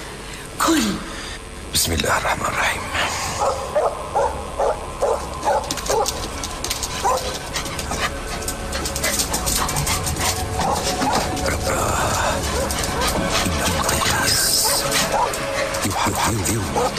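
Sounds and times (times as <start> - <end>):
busy noisy background: 0.0 - 16.9
speech: 0.7 - 1.1, 1.7 - 3.9
dog barking in short sharp yaps: 3.4 - 6.2, 7.0 - 7.4, 9.1 - 11.3, 14.5 - 15.8, 16.7 - 16.9.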